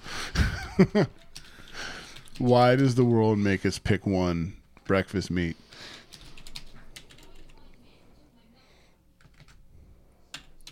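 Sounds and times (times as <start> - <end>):
laughter: 0.4 - 1.3
speech: 0.8 - 1.2, 2.4 - 5.6
typing on a computer keyboard: 1.2 - 2.7, 6.0 - 7.6, 9.2 - 9.6, 10.3 - 10.6.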